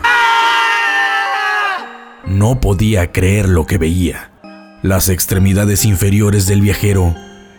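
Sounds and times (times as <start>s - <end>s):
man bending under a card table screaming in terror: 0.0s - 2.0s
speech: 2.4s - 7.3s.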